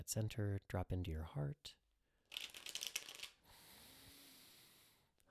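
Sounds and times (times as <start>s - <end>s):
speech: 0.0s - 1.8s
tarot cards being shuffled: 2.3s - 3.4s.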